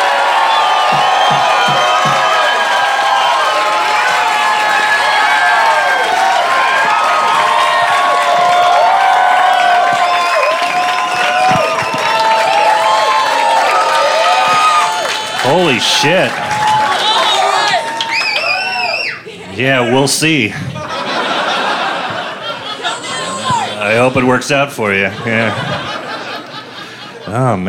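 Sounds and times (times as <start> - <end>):
large crowd cheering and applauding: 0.0 - 19.3, 20.7 - 24.3
shrill whoops and screams from a crowd: 0.0 - 19.3
speech: 15.6 - 16.5, 19.6 - 20.8, 23.9 - 25.9, 27.3 - 27.6
laughter: 19.1 - 27.6.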